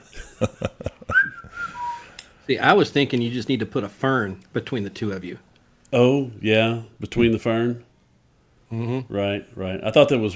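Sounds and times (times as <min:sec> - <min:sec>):
person chuckling: 0:00.0 - 0:01.8
speech: 0:00.4 - 0:00.7, 0:02.5 - 0:07.9, 0:08.7 - 0:10.3
person whistling a short steady note: 0:01.1 - 0:02.2.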